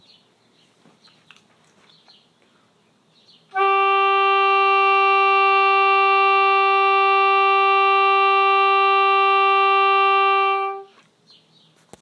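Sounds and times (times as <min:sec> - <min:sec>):
long tone on a reed: 0:03.5 - 0:10.9.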